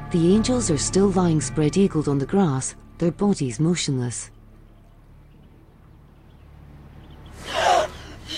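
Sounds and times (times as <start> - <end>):
speech: 0.1 - 4.3
people gasping for air: 7.3 - 8.3.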